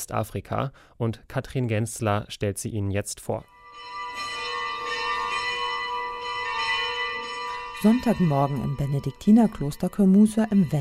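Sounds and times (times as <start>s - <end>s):
speech: 0.0s - 4.3s, 7.8s - 10.7s
monastery church bells ringing before mass: 3.4s - 10.7s.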